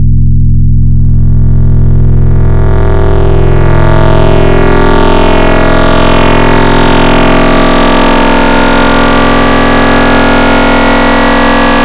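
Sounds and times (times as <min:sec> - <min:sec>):
Serum wavetable synthesizer tone, asymmetric triangle modulation: 0:00.0 - 0:11.8.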